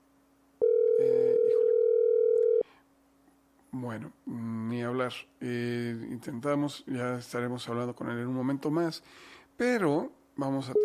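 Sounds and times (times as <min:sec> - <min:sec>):
telephone dial tone while placing a call over a shaky connection: 0:00.6 - 0:02.6
speech: 0:03.8 - 0:10.8.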